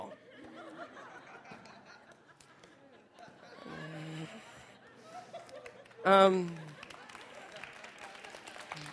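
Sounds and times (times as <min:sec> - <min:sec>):
crowd laughing: 0:00.0 - 0:08.9
audience clapping: 0:05.3 - 0:08.9
speech: 0:06.0 - 0:06.7.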